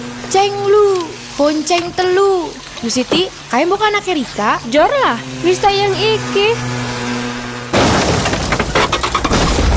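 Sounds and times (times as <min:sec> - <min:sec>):
low hum: 0:00.0 - 0:09.7
speech: 0:00.3 - 0:06.8
clattering and rattling impacts: 0:07.7 - 0:09.7
motorcycle accident crash of breaking and scraping debris: 0:07.7 - 0:09.7.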